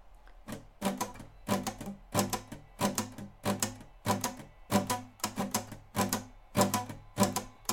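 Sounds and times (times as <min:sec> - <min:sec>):
guitar strummed with a banknote tucked under the strings at the neck: 0:00.4 - 0:07.7.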